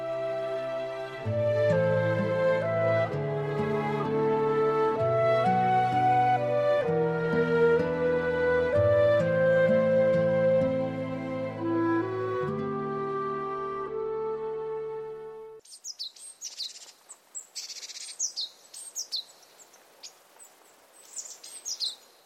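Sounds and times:
sustained harmonic musical tones: 0:00.0 - 0:15.6
songbird singing bright chirping phrases: 0:00.0 - 0:22.2.

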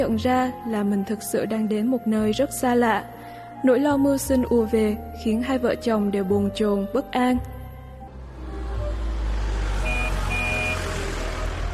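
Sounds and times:
speech: 0:00.0 - 0:07.6
broad road noise: 0:07.4 - 0:11.7
heavy vehicle engine rumble: 0:07.4 - 0:11.7
short high beeps: 0:09.8 - 0:10.8.

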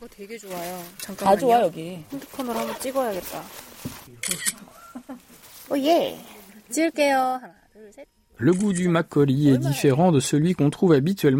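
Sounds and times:
speech: 0:00.0 - 0:04.6, 0:05.7 - 0:11.3
crisp camera shutter click: 0:04.2 - 0:04.6, 0:08.5 - 0:08.9
laughter: 0:04.5 - 0:05.4.

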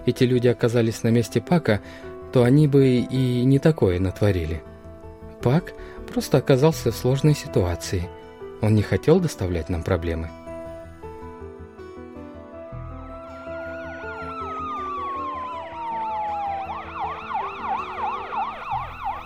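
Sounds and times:
speech: 0:00.0 - 0:04.7, 0:05.4 - 0:10.4
police car siren wailing and whooping: 0:13.2 - 0:19.2.

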